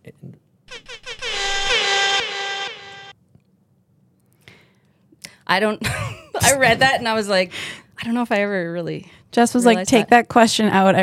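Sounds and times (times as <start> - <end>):
air horn sound effect: 0.7 - 3.2
speech: 5.5 - 11.0.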